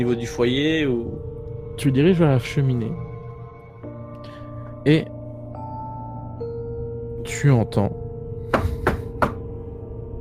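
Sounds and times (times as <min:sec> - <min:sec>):
speech: 0:00.0 - 0:03.1, 0:04.8 - 0:05.2, 0:07.3 - 0:08.0
sharp knocks on a door: 0:08.5 - 0:09.5.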